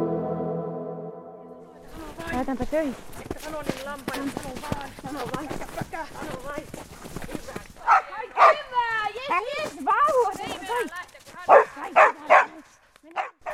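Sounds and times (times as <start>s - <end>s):
speech: 2.4s - 10.9s
herding dog barking while herding sheep: 7.9s - 8.7s, 11.5s - 12.6s, 13.2s - 13.5s.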